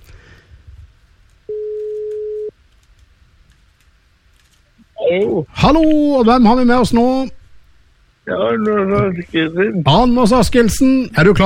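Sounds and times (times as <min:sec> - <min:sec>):
faint hiss: 0:00.0 - 0:11.4
telephone ringback tone on an outgoing call: 0:01.5 - 0:02.5
speech: 0:05.1 - 0:07.4, 0:08.3 - 0:11.4.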